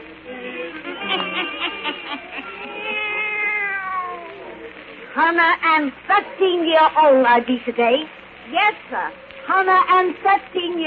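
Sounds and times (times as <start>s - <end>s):
laughter: 0.3s - 3.3s
cat meowing: 2.4s - 4.8s
speech: 5.2s - 10.8s.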